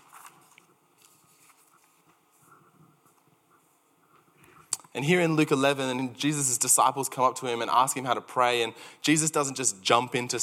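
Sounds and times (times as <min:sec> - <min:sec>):
paper notes rustling as sheets are shuffled: 0:00.0 - 0:03.3
speech: 0:05.0 - 0:10.4.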